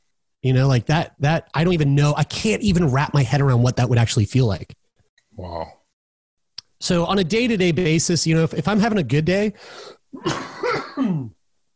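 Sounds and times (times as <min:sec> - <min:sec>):
speech: 0:00.4 - 0:04.8, 0:05.4 - 0:05.8, 0:06.8 - 0:11.4
person clearing throat: 0:10.2 - 0:11.4
person coughing: 0:10.2 - 0:11.4.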